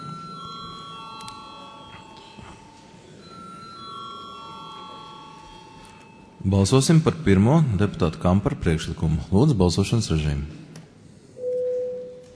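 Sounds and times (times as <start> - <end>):
bell rung in a parliament chamber before a vote: 0.0 - 6.5
low murmur of room noise in a parliament chamber: 0.0 - 12.3
speech: 6.4 - 10.7.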